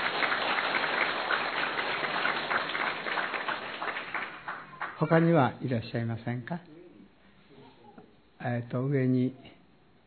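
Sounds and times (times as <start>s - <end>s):
audience applause: 0.0s - 5.4s
speech: 5.0s - 6.7s, 8.4s - 9.5s.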